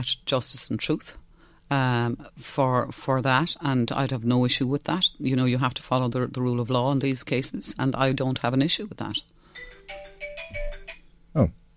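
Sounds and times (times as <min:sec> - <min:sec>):
speech: 0:00.0 - 0:10.3, 0:11.4 - 0:11.6
phone ringing with bright electronic ringtone notes: 0:09.5 - 0:11.1.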